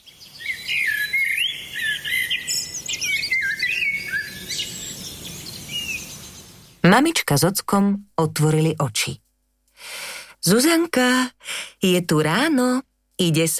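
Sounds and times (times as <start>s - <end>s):
several small birds chirping and twittering outside: 0.0s - 6.8s
speech: 6.9s - 9.2s, 10.4s - 13.5s.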